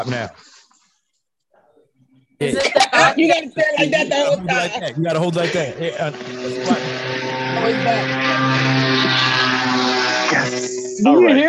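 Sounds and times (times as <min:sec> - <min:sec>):
speech: 0:00.0 - 0:00.6, 0:02.4 - 0:08.2, 0:11.0 - 0:11.4
laughter: 0:02.4 - 0:09.2
small putt-putt car driving past a window: 0:05.2 - 0:11.0.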